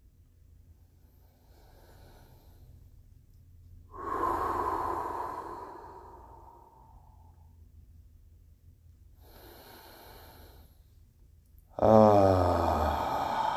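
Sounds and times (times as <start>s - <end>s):
deep sweeping breaths during a guided relaxation exercise: 1.0s - 3.0s, 3.8s - 7.6s, 9.2s - 11.0s, 11.8s - 13.5s
loud voiced exhale with a groaning sighing tone: 3.9s - 7.4s, 11.8s - 13.5s.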